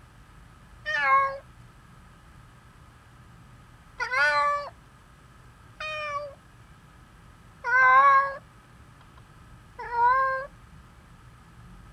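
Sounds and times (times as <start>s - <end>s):
steady background hum: 0.0s - 11.9s
domestic cat meowing: 0.9s - 1.4s, 4.0s - 4.7s, 5.8s - 6.3s, 7.7s - 8.4s, 9.8s - 10.5s.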